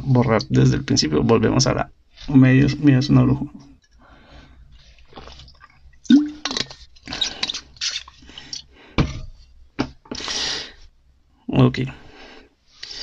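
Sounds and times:
speech: 0.0 - 3.7, 11.6 - 12.0
person gulping and swallowing water: 5.1 - 6.6.

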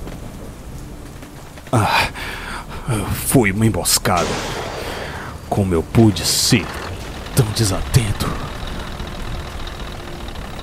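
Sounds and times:
speech: 1.7 - 2.3, 2.9 - 4.6, 5.5 - 8.5
heavy war tank and armored truck engines idling and churning: 4.2 - 10.6.

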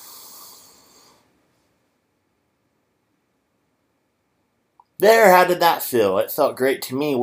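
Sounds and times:
deep breath in: 0.0 - 1.3
speech: 5.0 - 7.2.

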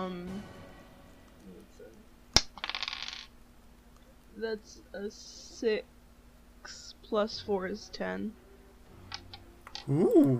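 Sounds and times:
dice including an eight-sided die tumbling across a hard table: 2.4 - 3.3
speech: 4.4 - 5.9, 6.6 - 8.4, 9.8 - 10.3.

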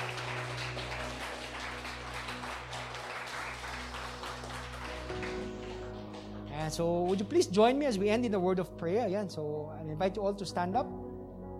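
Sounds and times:
church congregation applause as a clap offering: 0.0 - 7.7
speech: 6.6 - 11.0.

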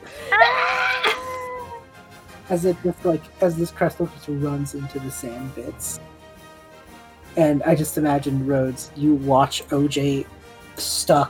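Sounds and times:
voice imitating a panicked scream: 0.0 - 1.8
speech: 2.5 - 6.1, 7.4 - 11.2.

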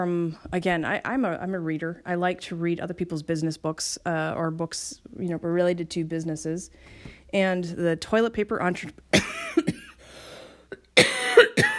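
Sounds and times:
speech: 0.0 - 9.8
person with a chronic cough linked to asthma coughing: 9.2 - 10.0, 10.7 - 11.7.

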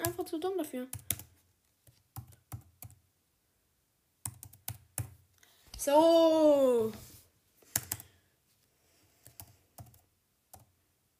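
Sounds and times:
computer keyboard typing: 0.0 - 0.3, 0.9 - 3.0, 4.2 - 5.2, 7.7 - 8.1, 9.2 - 10.7
speech: 0.2 - 1.2, 5.8 - 7.1.

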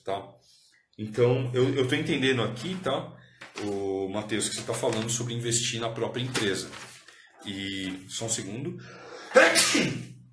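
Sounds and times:
speech: 0.0 - 10.1
single sudden loud sneeze: 9.3 - 10.1.

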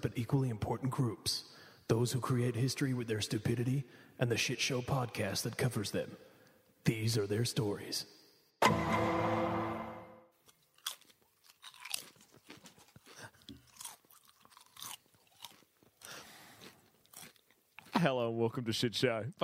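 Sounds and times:
speech: 0.0 - 9.1, 18.0 - 19.4
loud ringing musical hit: 8.6 - 10.2
person crunching and munching veggie crisps: 10.4 - 18.1.

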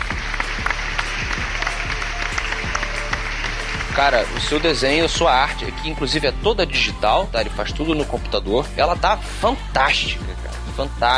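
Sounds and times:
crowd applauding: 0.0 - 7.0
speech: 4.0 - 11.1.

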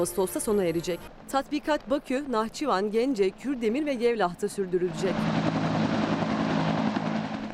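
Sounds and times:
speech: 0.0 - 5.7
Turkish military attack helicopter engine and rotor droning in flight: 4.8 - 7.5.

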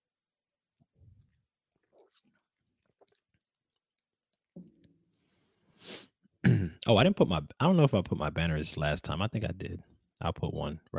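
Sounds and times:
person sipping a drink: 1.8 - 4.1
speech: 6.9 - 10.9.

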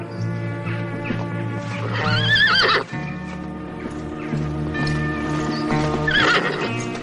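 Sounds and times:
horse hooves clopping in open countryside: 0.0 - 7.0
horses whinnying as riders rein them to a halt in open countryside: 0.9 - 3.2, 5.3 - 7.0
rising shrill horse neighs: 2.0 - 2.9, 6.0 - 6.7.

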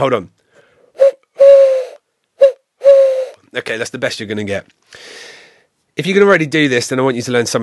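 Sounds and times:
speech: 0.0 - 0.4, 3.6 - 5.3, 6.0 - 7.6
owl hoots imitated by blowing into cupped hands: 0.9 - 3.4.

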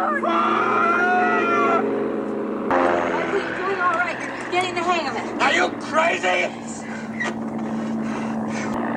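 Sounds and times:
airplane engine drone in flight: 0.0 - 8.9.

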